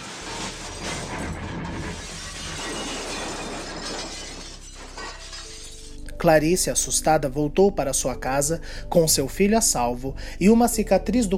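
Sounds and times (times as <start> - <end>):
loud car crash: 0.0 - 6.0
glass shattering: 0.0 - 6.3
breaking and scattering debris: 0.0 - 6.9
speech: 6.2 - 11.3.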